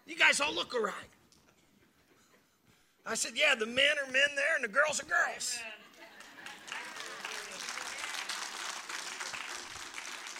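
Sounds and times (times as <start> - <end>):
speech: 0.1 - 1.2, 3.0 - 5.8
large crowd applauding: 6.1 - 10.3.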